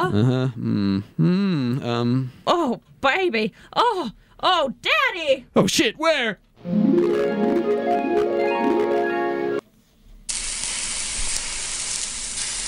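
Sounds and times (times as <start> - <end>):
speech: 0.0 - 8.3
tonal music-like sounds: 6.6 - 9.6
food frying in a pan: 10.3 - 12.6.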